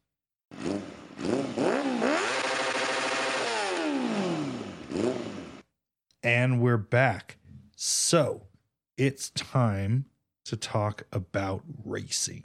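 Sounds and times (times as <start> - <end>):
motorcycle engine revving against the rev limiter: 0.5 - 5.7
speech: 6.2 - 12.4.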